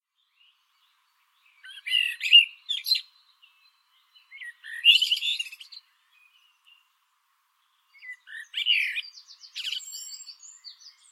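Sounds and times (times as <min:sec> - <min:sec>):
common blackbird Turdus merula song: 0:00.0 - 0:11.1.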